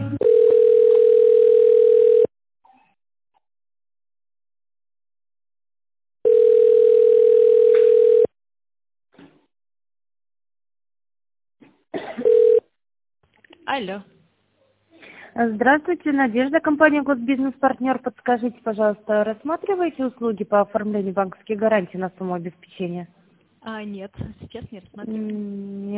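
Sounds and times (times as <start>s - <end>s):
telephone ringback tone while a call is transferred: 0.2s - 2.3s, 6.2s - 8.3s, 12.2s - 12.6s
speech: 13.8s - 14.1s, 15.4s - 25.9s.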